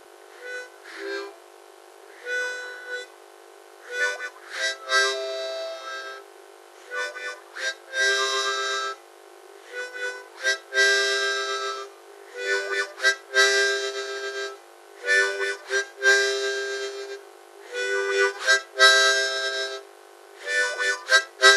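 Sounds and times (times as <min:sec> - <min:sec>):
harmonica: 0:00.0 - 0:01.4, 0:02.1 - 0:03.2, 0:03.8 - 0:21.5.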